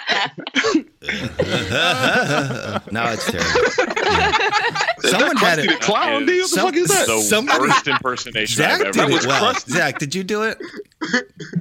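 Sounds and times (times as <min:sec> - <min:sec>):
laughter: 0:00.0 - 0:11.5
speech: 0:00.1 - 0:11.5
person producing forced staged coughs: 0:00.6 - 0:02.3.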